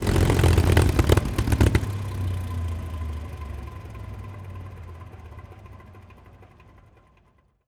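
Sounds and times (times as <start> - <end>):
P-51D plane engine stopping: 0.0 - 2.4.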